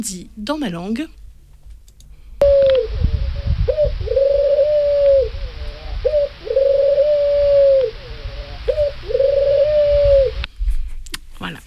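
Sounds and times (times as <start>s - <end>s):
speech: 0.0s - 1.2s
low rumble: 0.0s - 11.0s
pigeons cooing: 2.4s - 10.5s.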